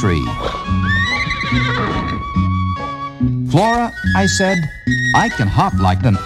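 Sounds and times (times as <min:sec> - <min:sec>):
speech: 0:00.0 - 0:00.8, 0:01.5 - 0:02.4, 0:03.6 - 0:06.2
horse low rough breathy snorting: 0:00.2 - 0:02.5
horse neighing with long whinny: 0:00.2 - 0:03.2.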